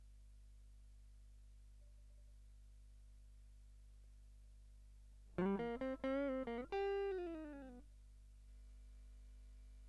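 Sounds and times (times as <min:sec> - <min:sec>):
guitar line: 0:05.4 - 0:07.8.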